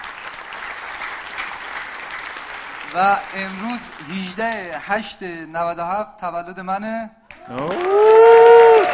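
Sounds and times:
audience applause for a birthday: 0.0s - 5.2s, 7.3s - 8.9s
speech: 2.9s - 8.3s.

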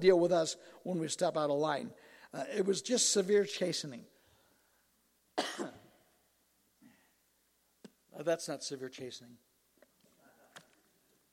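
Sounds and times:
speech: 0.0s - 4.1s, 8.2s - 9.5s
person coughing: 5.4s - 6.0s.

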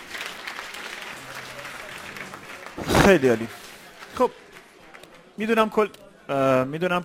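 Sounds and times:
group applauding: 0.0s - 5.1s
faint murmur of voices: 0.0s - 7.0s
speech: 2.8s - 3.6s, 4.2s - 4.4s, 5.4s - 7.0s.

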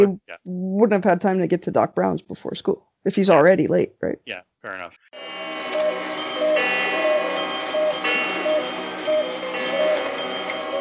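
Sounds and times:
speech: 0.0s - 6.1s
many clocks ticking: 5.6s - 10.7s.

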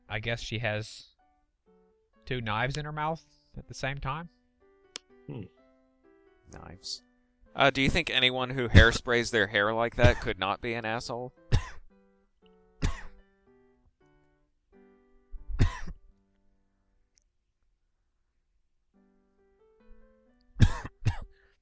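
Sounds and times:
speech: 0.1s - 1.1s, 2.3s - 4.4s, 5.3s - 5.6s, 6.5s - 11.4s
person coughing: 10.0s - 10.3s, 11.5s - 11.9s, 12.8s - 13.2s, 15.6s - 16.0s, 20.6s - 21.4s.

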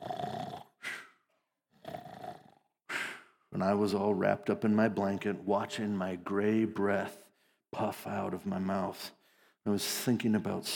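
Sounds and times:
person snoring while asleep: 0.0s - 1.1s, 1.8s - 2.6s
brief snort of snoring person: 0.0s - 1.2s, 1.8s - 3.3s
speech: 3.6s - 7.2s, 7.8s - 10.7s.

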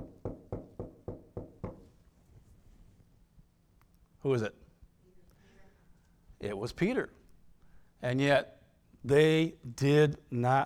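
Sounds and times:
firm knocking on a wooden door: 0.0s - 1.8s
speech: 4.2s - 4.6s, 6.4s - 7.2s, 8.0s - 10.6s.

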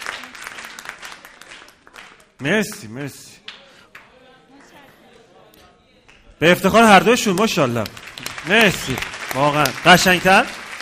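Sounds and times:
audience applause: 0.0s - 2.8s, 6.9s - 10.7s
speech: 2.4s - 3.4s, 6.4s - 10.6s.

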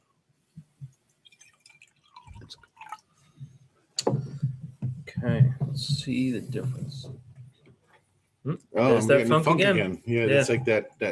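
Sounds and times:
cider pouring into a glass: 1.2s - 3.1s
speech: 5.2s - 7.3s, 8.4s - 11.1s.

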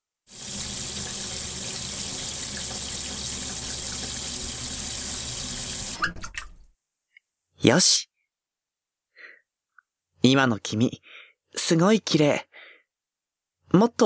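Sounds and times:
tap water running while something is rinsed: 0.3s - 6.7s
speech: 7.6s - 8.1s, 10.2s - 12.5s, 13.7s - 14.0s.

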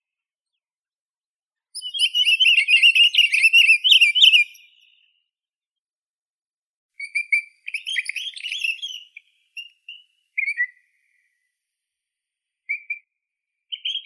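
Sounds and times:
pine grosbeak Pinicola enucleator whistles and warble: 1.8s - 4.7s, 7.0s - 10.7s.

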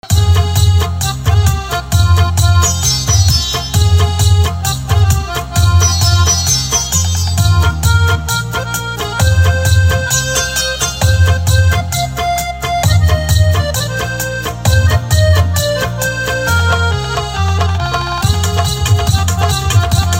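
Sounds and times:
Punjabi accordion instrumental ringtone: 0.0s - 20.1s.

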